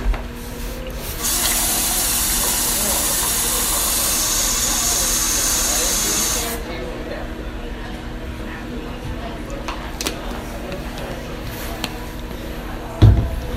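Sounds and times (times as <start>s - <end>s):
faint murmur: 0.0s - 13.5s
water pouring into a glass: 1.1s - 6.6s.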